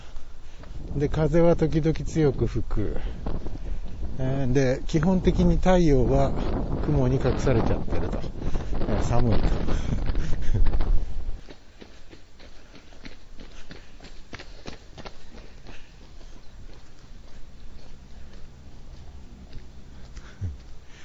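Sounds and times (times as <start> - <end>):
speech: 1.0 - 3.2, 4.2 - 10.8
two children running past in a game of chase: 8.1 - 21.0
laughter: 9.7 - 11.0.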